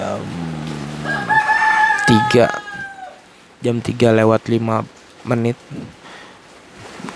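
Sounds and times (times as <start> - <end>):
rooster crowing in front of a house in the early morning: 0.8 - 3.2
speech: 2.1 - 2.6, 3.6 - 6.0.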